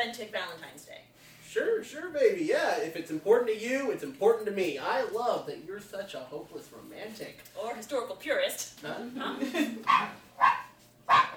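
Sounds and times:
speech: 0.1s - 11.2s
puppy barking: 9.8s - 11.3s.

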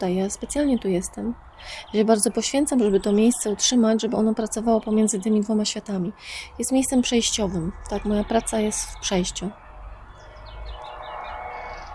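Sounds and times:
speech: 0.0s - 9.6s
birds chirping and singing: 0.0s - 11.9s.

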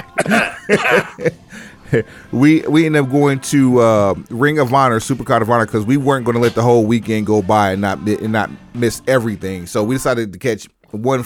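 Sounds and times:
person coughing harshly: 0.0s - 1.3s
laughter: 0.0s - 2.2s
speech: 0.2s - 11.2s.

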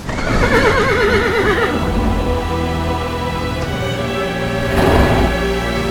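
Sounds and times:
horse neighing and whinnying: 0.0s - 3.1s, 4.0s - 5.8s.

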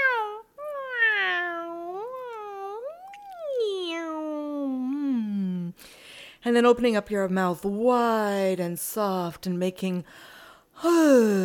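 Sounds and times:
person imitating cat meows: 0.0s - 5.3s
speech: 6.4s - 11.4s.

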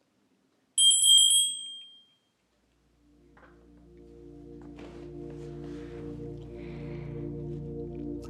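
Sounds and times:
bright meditation bell chime: 0.8s - 2.2s
low steady humming drone: 2.9s - 8.2s.

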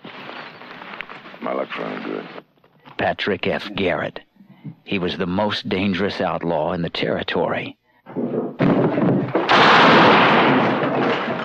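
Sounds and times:
speech: 1.4s - 4.3s, 4.9s - 7.8s
gunshots in an Old West frontier shootout: 8.6s - 11.4s.

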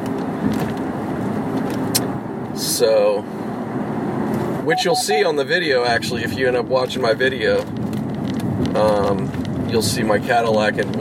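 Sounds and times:
low rumble of road noise inside a moving car: 0.0s - 10.9s
speech: 2.8s - 3.4s, 4.7s - 7.8s, 8.8s - 10.9s.

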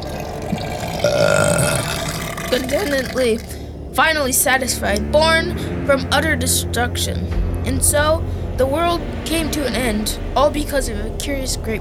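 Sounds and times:
steady low hum: 0.0s - 11.8s
loud drawn-out gurgling belch: 0.4s - 3.5s
speech: 2.6s - 11.8s.

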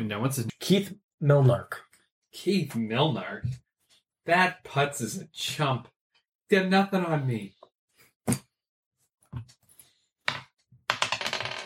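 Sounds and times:
speech: 0.1s - 3.6s, 4.2s - 5.9s, 6.5s - 7.6s, 8.2s - 8.4s, 9.3s - 9.6s
dice clattering across a hard tabletop: 10.3s - 11.6s.

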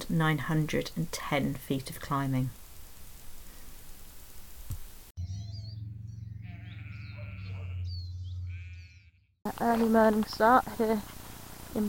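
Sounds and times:
speech: 0.1s - 2.6s, 9.8s - 11.8s
steady low hum: 4.8s - 8.9s
tiny Herdwick lambs bleating in Borrowdale: 6.4s - 7.9s, 8.5s - 9.0s.

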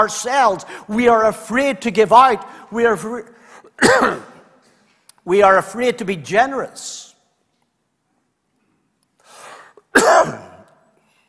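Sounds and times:
speech: 0.0s - 4.3s, 5.2s - 7.1s
soft breathy throat-clearing rasp: 3.8s - 4.4s, 9.9s - 10.7s
single forceful cough: 3.8s - 4.5s, 9.9s - 10.7s.

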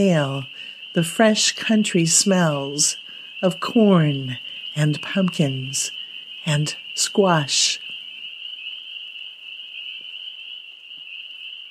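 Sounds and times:
speech: 0.0s - 7.8s
chorus of crickets trilling at night: 0.0s - 11.7s.

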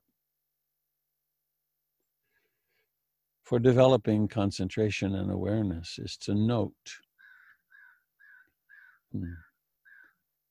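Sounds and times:
speech: 3.5s - 7.0s, 9.1s - 9.5s
bird cawing outdoors: 7.2s - 10.3s.

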